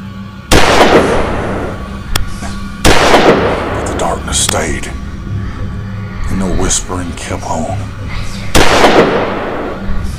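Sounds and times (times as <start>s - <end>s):
low rumbling background: 0.0s - 10.1s
gunshots: 0.5s - 1.9s, 2.8s - 4.7s, 8.5s - 9.9s
speech: 4.3s - 5.0s, 6.4s - 9.3s.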